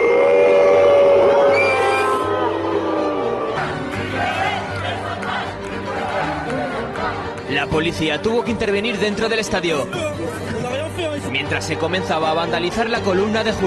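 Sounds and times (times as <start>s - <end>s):
large stadium crowd of local fans booing at a match: 0.0s - 7.3s
speech: 7.8s - 10.4s, 11.2s - 13.6s.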